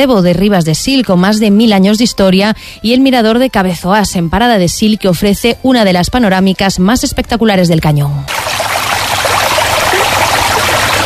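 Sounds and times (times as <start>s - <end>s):
speech: 0.0s - 8.7s
river water rushing: 8.3s - 11.0s.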